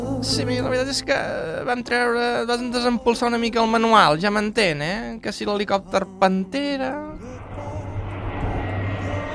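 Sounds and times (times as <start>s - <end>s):
speech: 0.2s - 7.1s
jet aircraft flying past: 7.1s - 9.3s.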